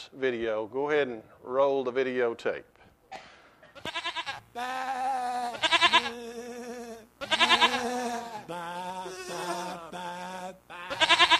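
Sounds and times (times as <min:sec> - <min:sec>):
speech: 0:00.0 - 0:02.8, 0:04.6 - 0:05.0
lambs bleating: 0:03.8 - 0:06.4, 0:07.2 - 0:11.3.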